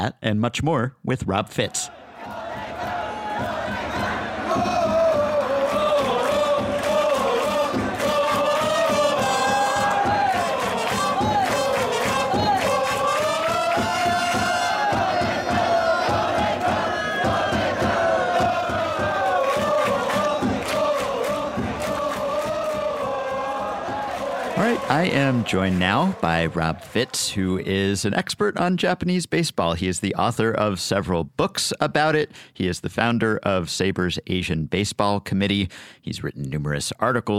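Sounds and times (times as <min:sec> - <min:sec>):
speech: 0:00.0 - 0:02.4, 0:24.8 - 0:37.3
huge stadium crowd of baseball fans chanting and singing a cheer song in unison: 0:01.9 - 0:27.2
percussion beating: 0:02.2 - 0:27.9
sharp claps: 0:04.5 - 0:27.2.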